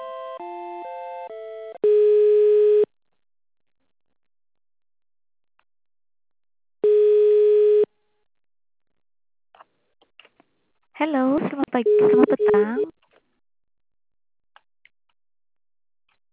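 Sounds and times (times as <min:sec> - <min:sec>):
long steady telephone tones during a call transfer: 0:00.4 - 0:02.9, 0:06.8 - 0:07.9, 0:11.8 - 0:12.9
speech: 0:11.0 - 0:12.9
stepped electronic telephone beeps during a call transfer: 0:11.8 - 0:12.9.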